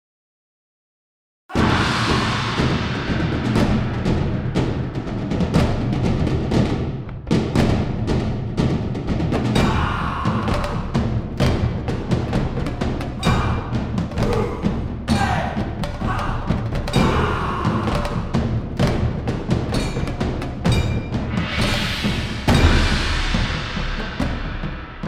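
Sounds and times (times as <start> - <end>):
solo percussion: 1.6 - 25.0.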